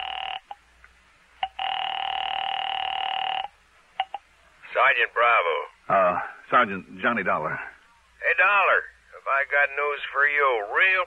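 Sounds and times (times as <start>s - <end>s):
telephone ring tone of a call placed from a phone booth: 0.0s - 0.6s, 1.4s - 4.2s
speech: 4.8s - 7.7s, 8.4s - 11.0s.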